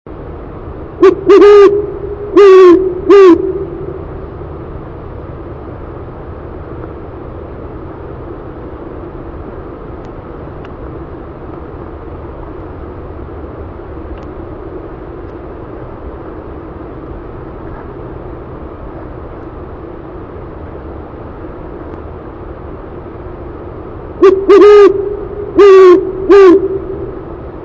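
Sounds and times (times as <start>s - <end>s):
great horned owl hooting: 1.0s - 4.1s, 24.2s - 27.4s.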